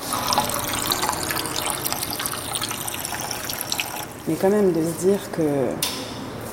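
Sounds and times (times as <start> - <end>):
sparkling water running from a tap: 0.0 - 4.2
speech: 4.3 - 6.0.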